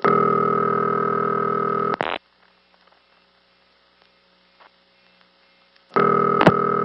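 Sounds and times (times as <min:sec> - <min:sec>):
telephone company busy number verification buzzing line tone: 0:00.0 - 0:02.2, 0:05.9 - 0:06.8.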